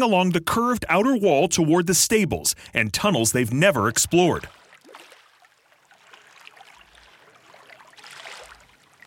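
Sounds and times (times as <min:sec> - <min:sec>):
speech: 0:00.0 - 0:04.6
person wading through knee-deep dirty water in tunnels beneath the hippodrome: 0:03.1 - 0:09.0.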